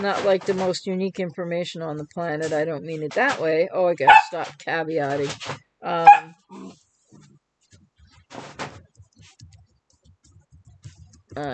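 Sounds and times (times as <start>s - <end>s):
speech: 0.0s - 6.8s, 11.4s - 11.5s
puppy just woken up yipping and barking: 6.1s - 6.3s.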